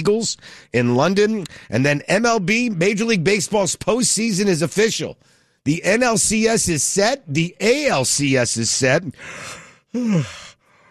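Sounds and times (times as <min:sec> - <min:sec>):
speech: 0:00.0 - 0:10.5
person yawning: 0:09.9 - 0:10.6.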